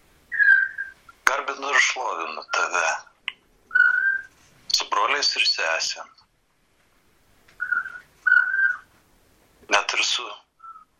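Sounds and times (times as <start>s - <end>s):
birds singing outdoors: 0.3s - 1.2s, 3.7s - 4.4s, 7.5s - 8.9s, 10.6s - 10.9s
speech: 1.8s - 3.1s, 5.0s - 6.2s, 9.7s - 10.4s.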